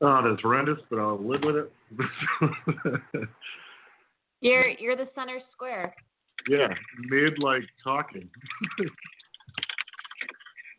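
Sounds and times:
speech: 0.0 - 3.7, 4.4 - 9.2
laughter: 2.0 - 3.4, 8.4 - 9.2
forceful typing on a computer keyboard: 6.4 - 10.7.

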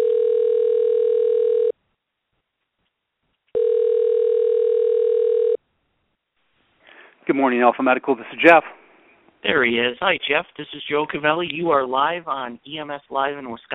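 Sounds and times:
telephone ringback tone as a call is placed: 0.0 - 1.7, 3.6 - 5.6
speech: 7.4 - 8.8, 9.4 - 13.7.

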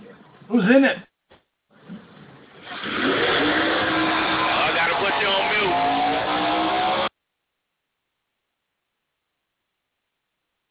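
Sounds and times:
speech: 0.5 - 1.1
race cars racing in a shootout, heard from the bleachers: 2.6 - 7.1.

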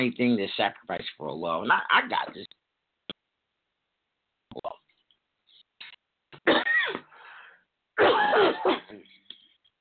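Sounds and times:
speech: 0.0 - 2.6, 8.0 - 9.0
person coughing: 6.4 - 7.1, 8.0 - 9.1.

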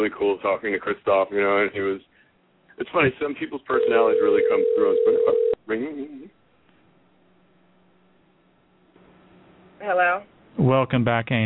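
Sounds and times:
speech: 0.0 - 2.1, 2.8 - 6.4, 9.8 - 11.4
telephone number being dialed: 3.8 - 5.6.

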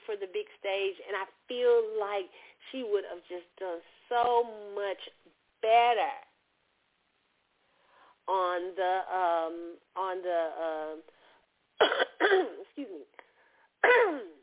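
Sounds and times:
speech: 0.1 - 6.3, 8.3 - 11.2, 11.8 - 13.1, 13.8 - 14.3
person clearing throat: 11.8 - 12.6, 13.8 - 14.4
person coughing: 11.8 - 12.6, 13.8 - 14.4.

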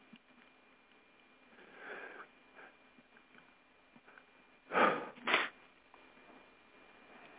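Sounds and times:
person sniffing: 4.7 - 5.6
stifled sneeze: 4.8 - 5.6.

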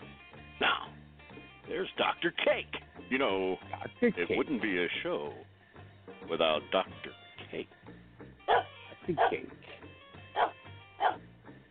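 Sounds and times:
speech: 1.7 - 5.5, 6.2 - 6.9, 7.6 - 7.8, 9.1 - 9.6
dog barking: 8.5 - 9.5, 10.4 - 11.2.

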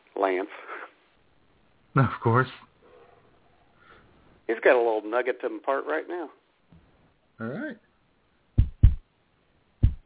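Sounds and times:
speech: 0.3 - 0.7, 2.0 - 2.7, 4.5 - 6.4, 7.4 - 7.8
heartbeat sound effect with deep lub-dub beats: 8.6 - 9.0, 9.8 - 10.0.

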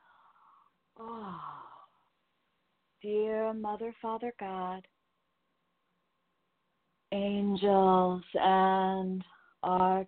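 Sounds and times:
quiet breathy sounds: 0.0 - 2.6, 9.2 - 9.6
person yawning to clear the channel: 1.0 - 1.9
speech: 3.0 - 4.9, 7.1 - 10.0.

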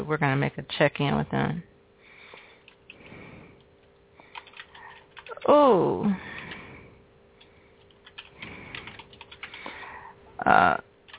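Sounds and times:
speech: 0.1 - 1.7, 5.5 - 6.3, 10.4 - 10.9
keys tapping on a computer keyboard: 4.2 - 5.6, 7.4 - 9.8.

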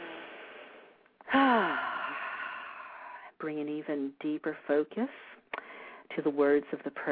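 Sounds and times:
slow deep breath in and out: 0.0 - 3.4, 5.3 - 6.1
speech: 3.4 - 5.4, 6.2 - 7.1.

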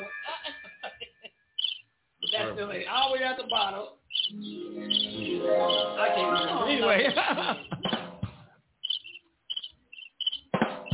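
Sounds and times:
laughter: 0.2 - 1.3, 5.1 - 8.0
squeaky chirping bird-like sound effect from a soundboard button: 1.6 - 2.5, 4.1 - 6.7, 8.9 - 10.9
people talking loudly: 2.3 - 3.9, 5.1 - 7.3.

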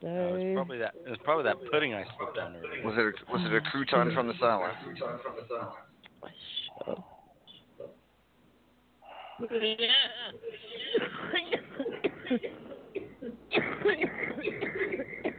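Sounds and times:
speech: 0.6 - 7.1, 9.4 - 11.6, 12.3 - 12.6
loud harsh raspy coughing: 10.6 - 15.3
throat clearing: 10.6 - 15.3.

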